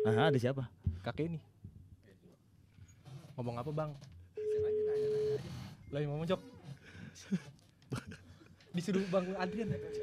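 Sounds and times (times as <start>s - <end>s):
steady electronic tone of a phone call being placed: 0.0s - 0.3s, 4.4s - 5.4s, 9.4s - 10.0s
speech: 0.0s - 1.5s, 3.4s - 4.7s, 5.4s - 6.6s, 7.2s - 8.2s, 8.8s - 10.0s
laughter: 7.0s - 9.7s.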